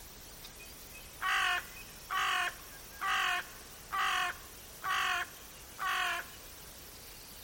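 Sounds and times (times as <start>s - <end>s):
background hiss: 0.0s - 7.4s
bird harsh cawing: 1.2s - 6.4s.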